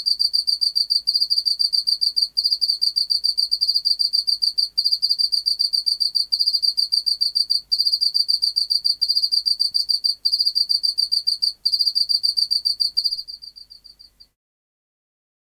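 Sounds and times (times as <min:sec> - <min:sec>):
Pacific field cricket Teleogryllus oceanicus song: 0:00.0 - 0:14.3.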